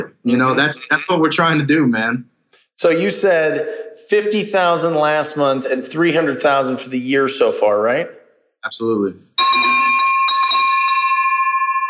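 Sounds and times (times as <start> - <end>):
speech: 0.0 - 9.8
bell ringing: 9.4 - 11.8.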